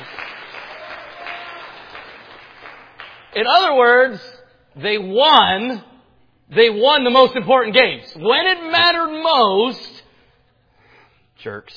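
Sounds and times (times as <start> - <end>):
group of people applauding: 0.0 - 3.4
speech: 3.4 - 5.9, 6.5 - 9.9, 11.4 - 11.7.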